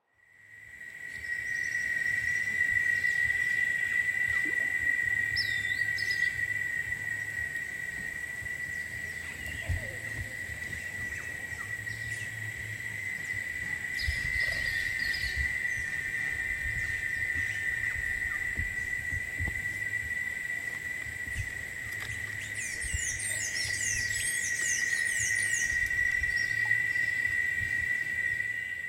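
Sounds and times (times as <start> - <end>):
birds in the Amazon: 0.0 - 28.8
cicadas in the Amazon: 0.0 - 28.8.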